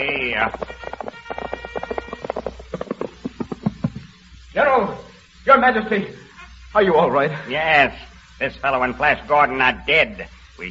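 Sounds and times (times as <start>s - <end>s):
speech: 0.0s - 1.2s, 4.8s - 6.2s, 6.8s - 10.6s
horses' hooves clip-clopping as a squad of soldiers rides up: 0.0s - 4.4s.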